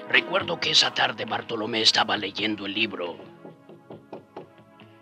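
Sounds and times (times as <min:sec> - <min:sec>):
speech: 0:00.2 - 0:03.2
hollow knocks on a door: 0:03.2 - 0:04.6.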